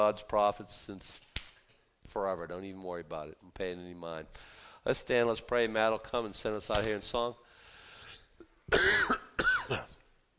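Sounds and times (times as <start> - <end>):
speech: 0.0 - 1.3, 2.0 - 7.4, 8.7 - 9.8
faint breath: 4.3 - 4.9, 7.4 - 8.4
person coughing: 8.7 - 10.0.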